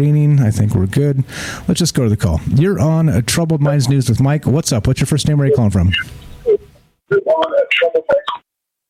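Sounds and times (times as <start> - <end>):
speech: 0.0 - 6.2
host's voice playing back over a phone line: 3.6 - 4.1, 5.4 - 8.4.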